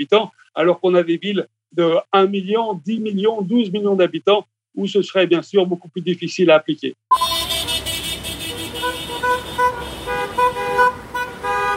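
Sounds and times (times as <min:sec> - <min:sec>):
speech: 0:00.0 - 0:07.2
car horns honking in a street protest in Araraquara Brazil: 0:07.1 - 0:11.7
steady rumble of street traffic in Araraquara Brazil: 0:07.1 - 0:11.7.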